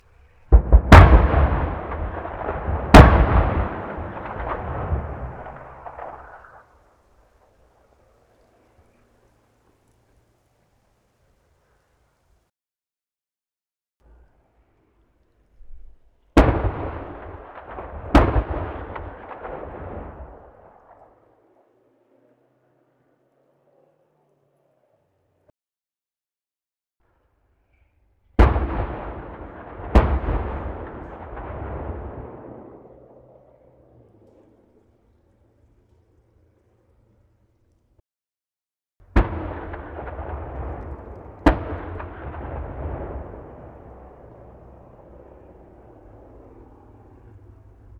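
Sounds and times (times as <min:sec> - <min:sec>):
distant warfare cannon firing in a forest: 0:00.1 - 0:09.4, 0:15.6 - 0:22.9, 0:28.4 - 0:37.4, 0:39.0 - 0:47.9.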